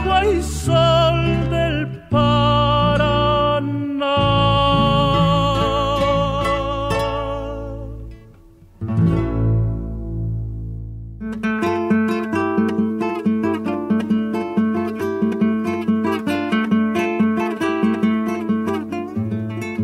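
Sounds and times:
Argentine litoral folk song with instruments and vocals: 0.0s - 10.0s, 11.4s - 19.8s.

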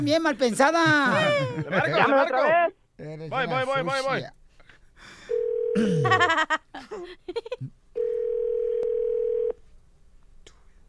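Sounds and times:
speech: 0.0s - 4.4s, 5.8s - 8.1s
laughter: 0.8s - 2.8s, 5.8s - 7.7s
steady flat telephone dial tone after call hung up: 8.0s - 9.6s.

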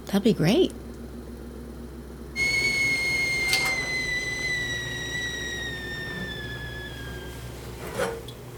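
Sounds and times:
low hum: 0.0s - 8.5s
kettle whistling as water boils for tea: 2.4s - 8.4s.

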